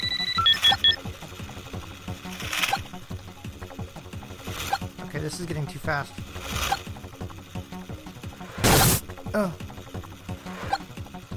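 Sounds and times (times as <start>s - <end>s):
clock hourly time announcement high electronic beeps: 0.0s - 1.0s
rhythmic clicking and clattering: 0.0s - 11.3s
speech: 5.2s - 6.6s, 9.4s - 9.7s.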